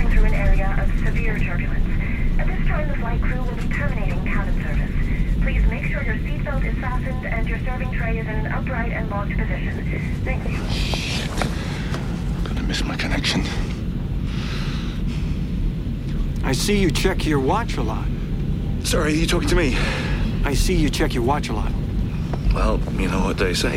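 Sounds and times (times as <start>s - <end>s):
overlapping murmured voices in a crowded airplane cabin: 0.0s - 13.8s, 18.9s - 20.8s
steady low airplane engine drone: 0.0s - 23.7s
speech: 16.5s - 18.2s, 18.8s - 21.8s, 22.6s - 23.7s.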